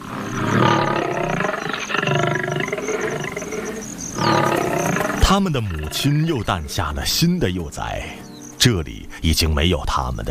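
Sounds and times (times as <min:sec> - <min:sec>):
young lions about two years old roaring: 0:00.0 - 0:06.1
speech: 0:05.3 - 0:10.2.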